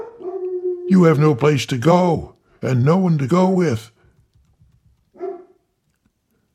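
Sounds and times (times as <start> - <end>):
dog barking: 0.0 - 0.6, 5.1 - 5.7
speech: 0.9 - 4.0.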